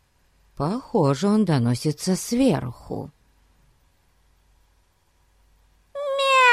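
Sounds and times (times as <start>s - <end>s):
speech: 0.6s - 3.2s
cat meowing: 6.0s - 6.5s.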